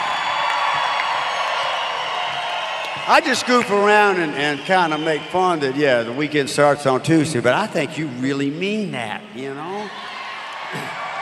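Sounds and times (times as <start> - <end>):
live crowd cheering and whooping at an evening event: 0.0 - 6.5, 9.6 - 11.2
speech: 3.1 - 10.1.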